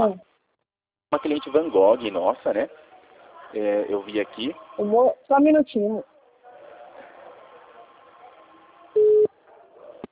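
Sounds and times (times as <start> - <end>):
speech: 0.0 - 0.3, 1.1 - 2.8, 3.5 - 6.1
telephone tone signalling an incoming call: 9.0 - 9.3.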